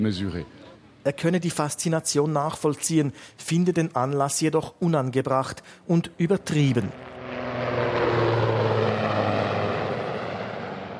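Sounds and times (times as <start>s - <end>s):
speech: 0.0s - 7.1s
Super Puma helicopter flying aerobatics: 6.4s - 10.9s.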